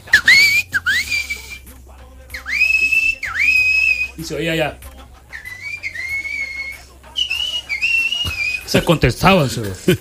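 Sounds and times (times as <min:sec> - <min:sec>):
person whistling in imitation with sharp rising notes: 0:00.0 - 0:01.7, 0:02.3 - 0:04.2, 0:05.3 - 0:08.7
speech: 0:04.2 - 0:04.8, 0:08.7 - 0:09.9.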